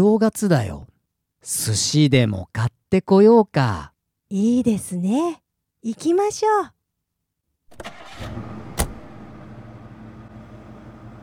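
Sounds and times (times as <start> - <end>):
speech: 0.0 - 6.8, 7.7 - 8.5
Lexus convertible engine starting and idling: 7.7 - 11.2.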